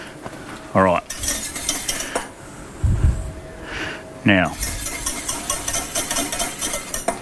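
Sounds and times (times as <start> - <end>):
speech: 0.7 - 1.1, 4.2 - 4.8
utensil stirring and scraping through rice: 1.1 - 2.3, 4.6 - 7.1.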